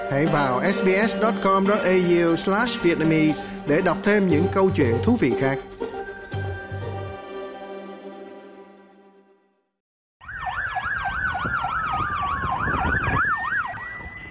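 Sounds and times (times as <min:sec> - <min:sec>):
police and ambulance sirens wailing after a shooting: 0:00.0 - 0:05.0, 0:10.2 - 0:14.3
brief musical chime: 0:00.0 - 0:09.2
speech: 0:00.1 - 0:05.7.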